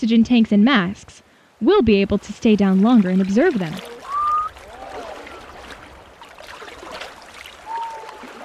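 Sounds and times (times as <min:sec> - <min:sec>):
speech: 0:00.0 - 0:04.0
sea water lapping and splashing: 0:01.5 - 0:08.4
Henyo divers exhaling in high whistling breaths on surfacing from the sea: 0:04.0 - 0:04.6.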